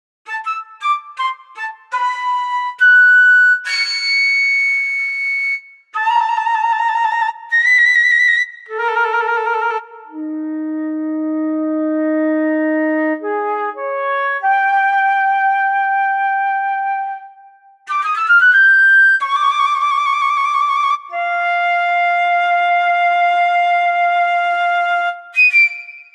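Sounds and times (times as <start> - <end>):
flute playing: 0.3 - 26.1.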